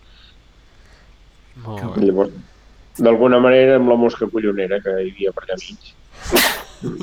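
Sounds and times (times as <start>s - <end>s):
low vocal murmur: 1.5s - 2.5s
speech: 1.6s - 7.0s
person sneezing: 6.2s - 7.0s.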